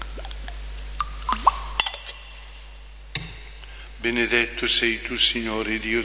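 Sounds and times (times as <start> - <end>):
water trickling into wine in a chalice: 0.0 - 2.1
speech: 4.0 - 6.0.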